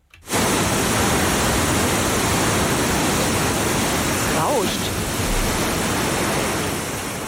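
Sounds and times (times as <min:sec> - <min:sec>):
fast-flowing water rushing at an artificial river surf wave: 0:00.3 - 0:07.2
faint tonal warble: 0:04.8 - 0:06.4.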